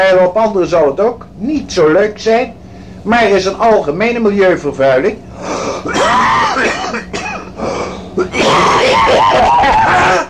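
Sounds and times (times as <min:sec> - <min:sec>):
speech: 0:00.0 - 0:10.2
coughing and throat-clearing: 0:05.7 - 0:10.2.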